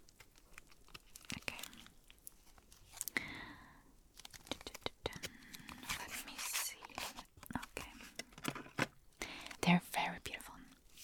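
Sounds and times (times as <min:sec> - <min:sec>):
small papery crackles and clicks of card deck packaging: 0:00.0 - 0:03.5, 0:04.1 - 0:11.0
packaging of a new sealed deck of affirmation cards tearing: 0:00.1 - 0:03.3, 0:04.1 - 0:07.6.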